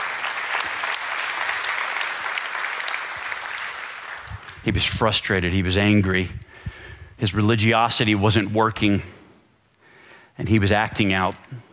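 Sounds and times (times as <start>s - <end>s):
large audience applauding: 0.0s - 4.7s
speech: 4.6s - 6.5s, 7.2s - 9.2s, 10.4s - 11.7s.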